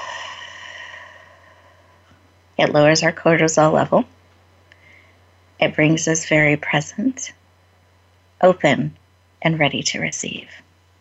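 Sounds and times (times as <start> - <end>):
long slow exhale out through the mouth: 0.0 - 2.0
speech: 2.6 - 4.2, 5.6 - 7.4, 8.4 - 10.6.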